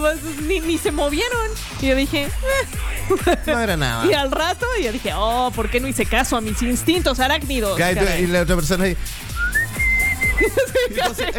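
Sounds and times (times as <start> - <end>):
speech: 0.0 - 9.2, 10.4 - 11.3
laughter: 2.4 - 5.0, 10.2 - 11.3
human voice imitating whistling: 9.3 - 10.8.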